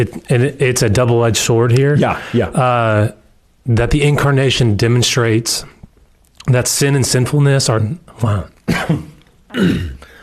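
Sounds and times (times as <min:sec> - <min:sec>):
speech: 0:00.0 - 0:05.8, 0:06.4 - 0:10.0
person coughing in harsh throat-clearing bursts: 0:08.7 - 0:10.2.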